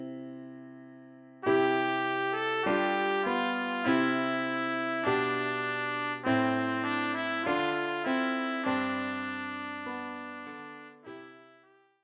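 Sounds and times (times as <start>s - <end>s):
trumpet playing a Christmas carol: 1.4s - 11.9s.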